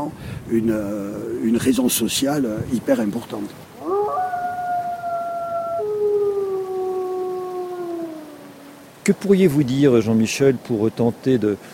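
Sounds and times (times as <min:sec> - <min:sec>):
speech: 0:00.0 - 0:03.7, 0:09.0 - 0:11.7
pack of wolves howling in a wild valley: 0:03.8 - 0:09.0.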